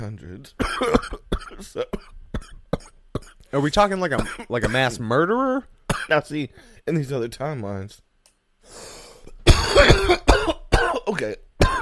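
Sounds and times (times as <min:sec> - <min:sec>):
speech: 0:00.0 - 0:02.8, 0:03.5 - 0:09.0, 0:11.2 - 0:11.4
harsh cough close to the microphone: 0:00.6 - 0:03.4, 0:04.2 - 0:05.0, 0:05.9 - 0:06.2, 0:09.2 - 0:11.8.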